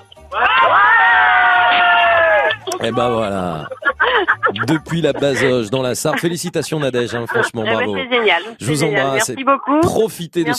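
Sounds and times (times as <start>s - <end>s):
group of people cheering and shouting with joy: 0.2s - 3.2s
speech: 0.3s - 0.9s, 2.8s - 10.5s
laughter: 1.8s - 9.0s.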